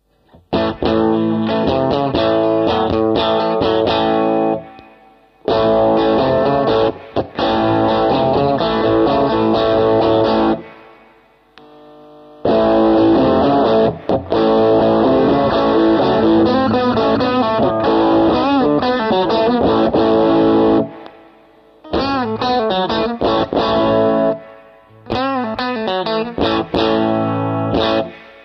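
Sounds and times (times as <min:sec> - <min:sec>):
electric guitar played through overdrive pedals: 0:00.0 - 0:28.4.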